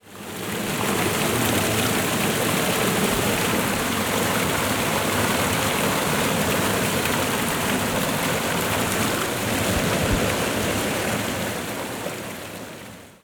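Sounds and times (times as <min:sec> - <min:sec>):
waterfall ambience: 0:00.0 - 0:13.2.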